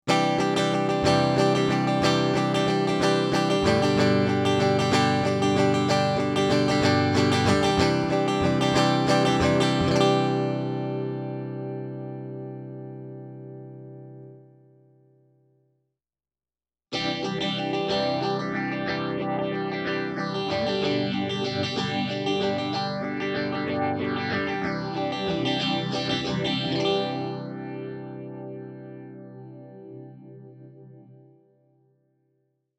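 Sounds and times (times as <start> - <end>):
electric guitar through rackmount phaser: 0.1 - 14.8, 16.9 - 31.4.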